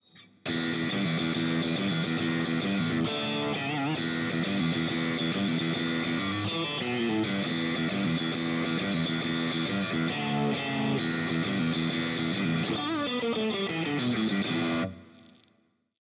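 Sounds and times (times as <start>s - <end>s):
overdriven electric guitar on middle and neck pickups: 0.4s - 15.6s.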